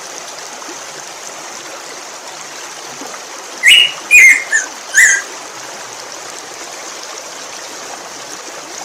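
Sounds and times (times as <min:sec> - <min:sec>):
Black-throated grosbeak whistled call: 0:03.6 - 0:05.3.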